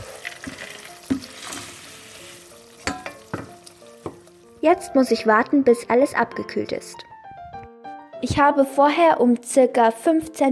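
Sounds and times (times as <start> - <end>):
spoon scraping against the pan: 0.0 - 4.3
seed mix sizzling in melted coconut fat on a stove: 0.0 - 5.2
speech: 4.6 - 7.1, 8.2 - 10.5.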